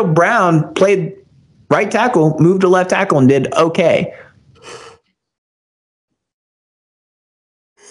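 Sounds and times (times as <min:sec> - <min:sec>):
speech: 0:00.0 - 0:04.8
faint breath: 0:04.1 - 0:05.1
big human yawn: 0:04.6 - 0:05.0.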